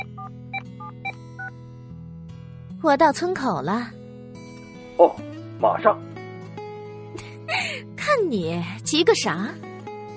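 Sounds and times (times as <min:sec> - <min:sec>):
mobile phone keypad dual-tone beeps in a parked car: 0:00.0 - 0:01.5
speech: 0:02.8 - 0:04.0, 0:05.0 - 0:06.1, 0:08.1 - 0:09.7.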